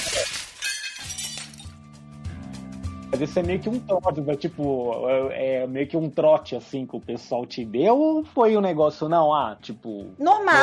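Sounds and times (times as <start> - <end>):
glass dishes shattering on a tray dropped on ship stairs: 0.0 - 1.8
glass fragments clinking and tinkling: 0.0 - 1.8
speech: 3.2 - 10.6.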